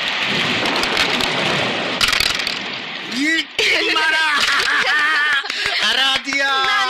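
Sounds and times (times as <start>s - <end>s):
low thunder rumbling: 0.0s - 4.7s
heavy rain pouring: 0.0s - 6.8s
laughter: 3.6s - 6.8s.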